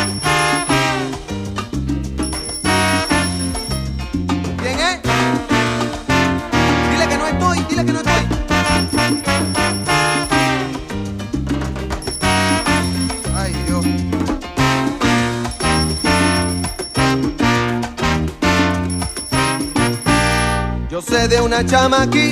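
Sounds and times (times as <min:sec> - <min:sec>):
bright bell ringing: 0:00.0 - 0:01.4, 0:02.2 - 0:04.4, 0:08.6 - 0:10.8, 0:12.0 - 0:14.4, 0:15.4 - 0:17.8, 0:18.8 - 0:20.8
band playing a loud rhythmic groove: 0:00.0 - 0:22.3
speech: 0:21.3 - 0:22.3.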